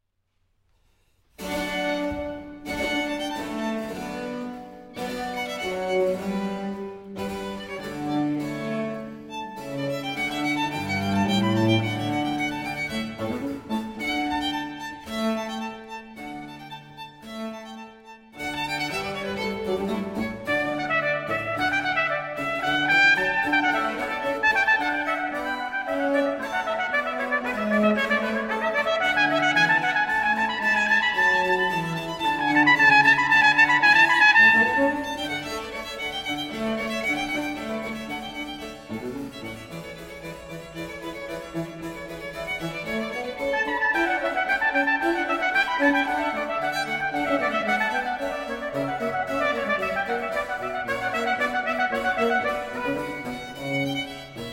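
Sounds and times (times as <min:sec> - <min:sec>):
violin concerto: 0:00.8 - 0:54.5.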